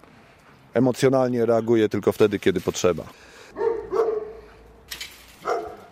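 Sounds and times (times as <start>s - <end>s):
speech: 0.8s - 3.6s
six-year-old police patrol and tracking dog barking: 3.5s - 4.7s, 5.4s - 5.9s.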